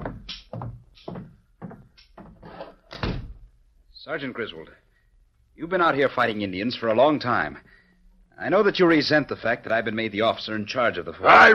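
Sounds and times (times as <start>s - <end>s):
footsteps across a room: 0.0s - 2.8s
door being closed with a solid thunk: 2.9s - 3.5s
speech: 4.1s - 4.8s, 5.6s - 7.8s, 8.4s - 11.5s.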